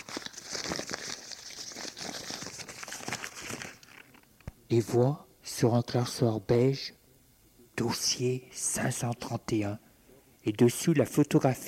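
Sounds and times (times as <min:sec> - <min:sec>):
wrapping paper tearing off a tied package: 0:00.0 - 0:04.3
speech: 0:04.7 - 0:07.0, 0:07.8 - 0:09.8, 0:10.4 - 0:11.6.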